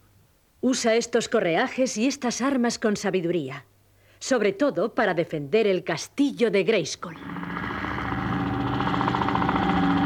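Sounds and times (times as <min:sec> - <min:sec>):
speech: 0:00.6 - 0:07.4
engine-like drone of a rocket-propelled glider spacecraft crossing a valley: 0:07.1 - 0:10.0.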